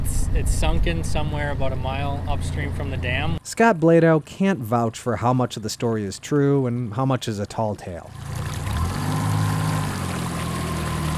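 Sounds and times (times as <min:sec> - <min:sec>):
motorboat engine droning in a river channel below a hoist and dam: 0:00.0 - 0:03.4, 0:08.0 - 0:11.1
water noise in a river channel: 0:00.0 - 0:11.1
speech: 0:00.3 - 0:08.4.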